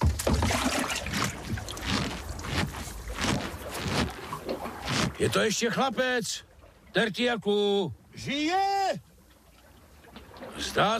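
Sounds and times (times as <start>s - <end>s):
person jumping out of a small boat: 0.0s - 5.3s
water sloshing and splashing around a small boat: 0.0s - 10.9s
wind: 0.0s - 10.9s
speech: 5.2s - 9.1s, 10.5s - 10.9s.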